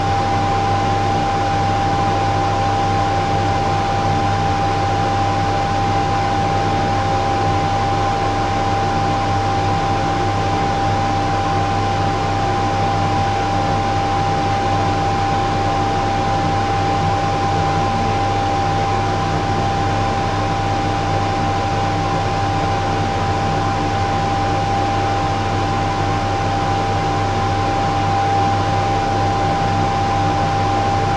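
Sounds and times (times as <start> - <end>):
kitchen extractor fan running: 0.0 - 31.1.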